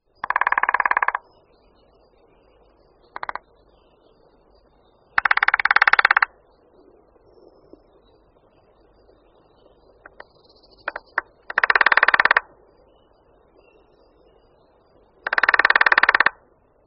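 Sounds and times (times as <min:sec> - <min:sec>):
lesser spotted woodpecker drumming: 0:00.2 - 0:01.3, 0:03.2 - 0:03.5, 0:05.2 - 0:06.3, 0:10.0 - 0:12.5, 0:15.2 - 0:16.4.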